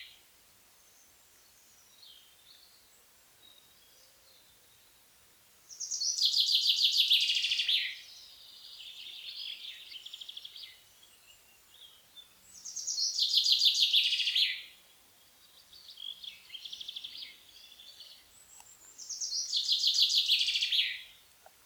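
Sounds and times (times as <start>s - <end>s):
common chaffinch singing trilled phrases: 5.7s - 21.6s.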